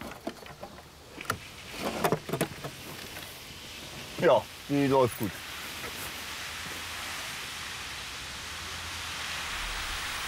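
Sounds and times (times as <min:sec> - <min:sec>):
water spraying from a hose nozzle: 0:01.4 - 0:10.2
speech: 0:04.2 - 0:05.4
faint low rumble: 0:08.4 - 0:10.2.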